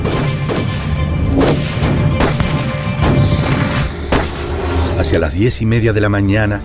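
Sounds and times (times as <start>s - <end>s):
cannon fire from ships bombarding shore batteries in a naval battle: 0.1s - 4.6s
speech: 5.1s - 6.6s.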